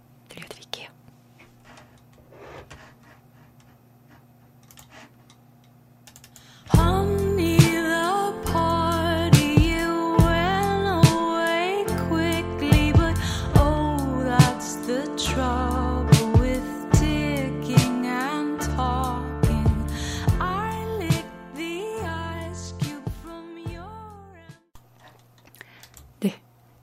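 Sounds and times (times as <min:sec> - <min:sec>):
soft indie rock song with female vocals, drums and bass: 0:06.8 - 0:23.9.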